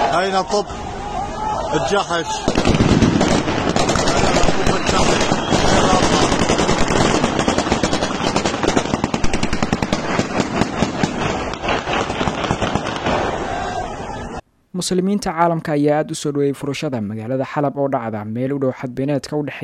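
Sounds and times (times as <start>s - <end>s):
speech: 0.1s - 0.9s, 1.7s - 2.8s, 4.6s - 6.7s, 14.8s - 19.6s
celebratory gunfire in a city: 2.5s - 13.2s.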